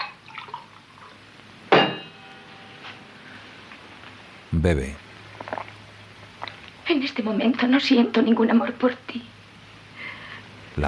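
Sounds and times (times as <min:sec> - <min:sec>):
water poured softly into a glass at a bar cabinet: 0:00.0 - 0:01.2
glass set down with a ringing clink: 0:01.7 - 0:03.1
speech: 0:04.5 - 0:05.0, 0:07.0 - 0:09.4.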